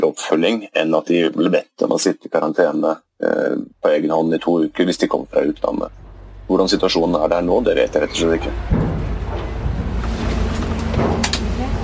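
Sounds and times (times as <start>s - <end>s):
speech: 0.0s - 9.0s
low car engine rumble while boarding a ferry: 3.7s - 11.8s
metallic clanks: 5.9s - 11.8s.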